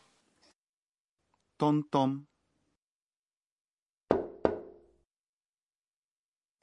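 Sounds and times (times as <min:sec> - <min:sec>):
speech: 0:01.6 - 0:02.3
person knocking on a wooden door: 0:04.1 - 0:04.9.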